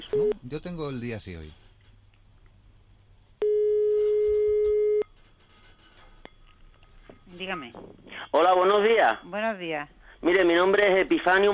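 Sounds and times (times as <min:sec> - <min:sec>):
faint noise: 0:00.0 - 0:11.5
speech: 0:00.1 - 0:01.6, 0:07.3 - 0:11.5
telephone line tone while placing a call: 0:03.4 - 0:05.1.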